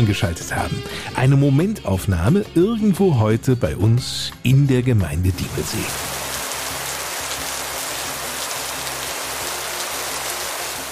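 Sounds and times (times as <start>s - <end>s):
speech: 0.0s - 6.1s
steady rain falling: 5.4s - 10.8s.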